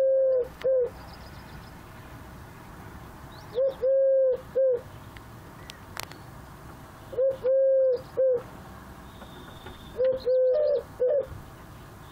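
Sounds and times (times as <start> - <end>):
Eurasian collared dove three-note coo song: 0.0 - 1.0, 3.5 - 4.9, 7.1 - 8.5, 9.9 - 11.4.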